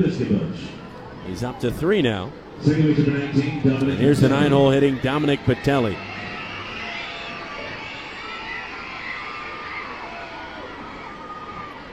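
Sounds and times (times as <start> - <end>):
speech: 0.0 - 6.3
crowd of young children screaming and shouting excitedly in an open baseball stadium: 3.9 - 11.9.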